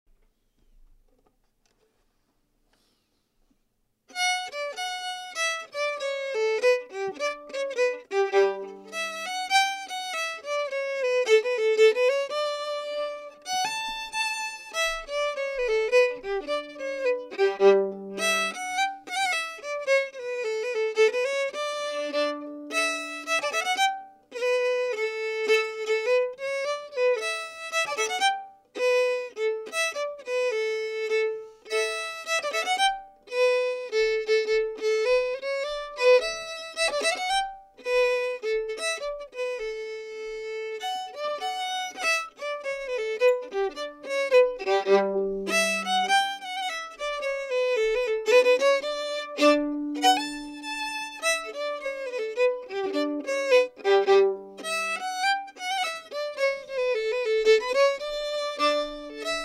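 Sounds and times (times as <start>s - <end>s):
solo fiddle: 4.1s - 59.4s.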